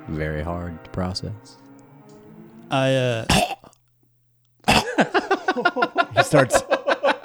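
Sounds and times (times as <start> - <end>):
speech: 0.1 - 1.7, 2.7 - 3.6, 5.0 - 6.8
strained throaty vocal sound: 2.2 - 3.6
person hacking coughs: 3.1 - 3.7, 4.7 - 5.1
laughter: 4.7 - 7.2.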